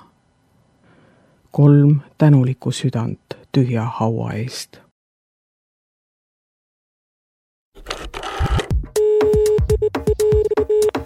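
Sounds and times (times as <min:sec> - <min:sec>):
speech: 0:01.5 - 0:04.8
steady electronic telephone ringing tone on a live radio call: 0:08.0 - 0:11.0.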